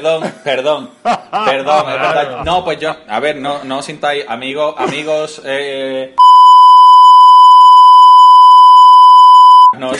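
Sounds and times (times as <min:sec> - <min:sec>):
speech: 0:00.0 - 0:06.3, 0:09.7 - 0:09.9
laughter: 0:01.0 - 0:02.7
censor bleep: 0:06.2 - 0:09.8.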